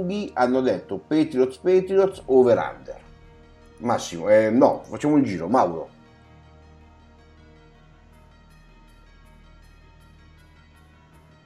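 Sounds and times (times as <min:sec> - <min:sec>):
speech: 0:00.0 - 0:03.0, 0:03.8 - 0:05.9
background music: 0:00.0 - 0:11.4.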